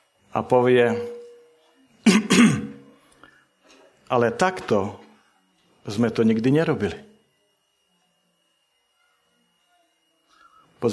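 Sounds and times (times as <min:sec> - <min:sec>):
speech: 0:00.4 - 0:01.2, 0:04.1 - 0:05.0, 0:05.8 - 0:07.1
preacher clearing his throat: 0:02.0 - 0:02.8.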